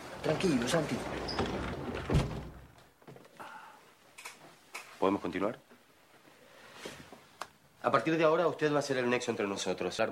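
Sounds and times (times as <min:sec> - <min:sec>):
speech: 0:00.2 - 0:02.3, 0:05.0 - 0:05.7, 0:07.8 - 0:10.1
door swinging shut: 0:01.1 - 0:02.8.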